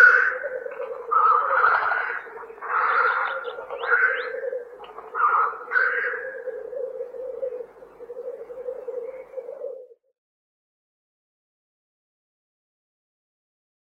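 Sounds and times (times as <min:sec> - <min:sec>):
black grouse giving a bubbling coo: 0:00.0 - 0:10.1.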